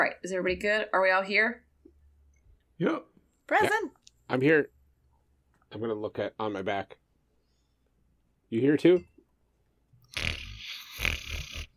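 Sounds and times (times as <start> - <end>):
speech: 0.0 - 1.6, 2.8 - 4.8, 5.7 - 7.0, 8.5 - 9.1, 10.1 - 10.3
sleeping creature snoring: 10.1 - 11.7.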